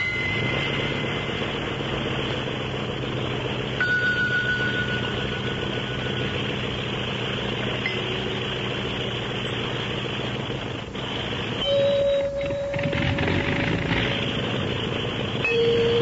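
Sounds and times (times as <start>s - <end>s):
clear sustained ringing tones: 0.0s - 2.2s, 3.7s - 7.0s, 11.6s - 14.5s, 15.4s - 16.0s
small plane motor droning: 0.0s - 16.0s.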